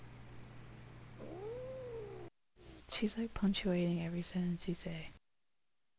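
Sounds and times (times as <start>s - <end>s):
low steady hum: 0.0s - 5.2s
angry cat yowling while being held: 1.2s - 2.8s
speech: 2.9s - 5.2s.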